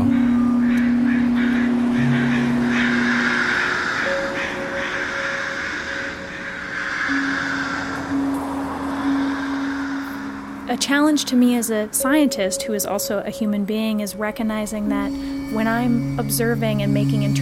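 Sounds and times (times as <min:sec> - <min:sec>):
crows on power lines cawing harshly above a busy street: 0:00.0 - 0:10.8
long sustained tones from passing vehicles: 0:00.0 - 0:17.4
steady traffic rumble of a busy street: 0:00.0 - 0:17.4
speech: 0:10.8 - 0:17.4.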